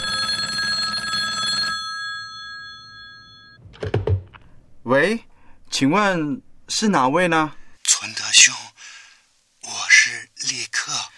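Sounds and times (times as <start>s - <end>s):
old telephone bell ringing with a bright metallic jangle: 0.0s - 3.6s
speech: 4.9s - 8.6s.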